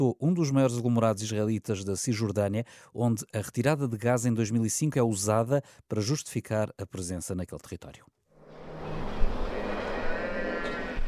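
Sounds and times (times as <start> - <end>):
speech: 0.0 - 8.2
noise in a dairy barn: 0.0 - 11.0
cows mooing in a large dairy barn: 9.4 - 11.0.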